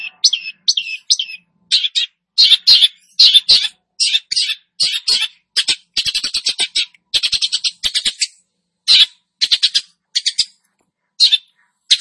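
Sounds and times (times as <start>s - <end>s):
long-tailed shrike singing actively: 0.0s - 10.6s, 11.2s - 11.9s.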